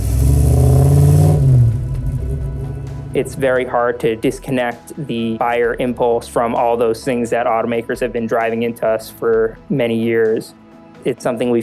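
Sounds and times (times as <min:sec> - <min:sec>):
V8 sports car engine revving: 0:00.0 - 0:04.0
speech: 0:03.2 - 0:11.6.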